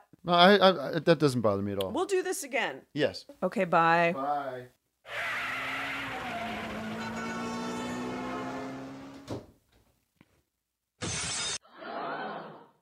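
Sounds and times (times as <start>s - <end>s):
speech: 0.2s - 5.4s
long squealing tone in an improvised car crash sound effect: 5.1s - 8.5s
laughter: 11.7s - 12.7s.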